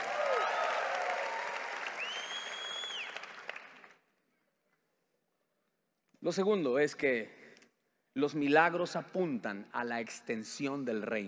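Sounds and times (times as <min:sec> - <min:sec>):
audience shouting for joy: 0:00.0 - 0:01.6
audience applauding the Lord: 0:00.0 - 0:04.0
scattered whistles from the audience: 0:01.9 - 0:03.4
speech: 0:06.2 - 0:07.4, 0:08.2 - 0:11.2.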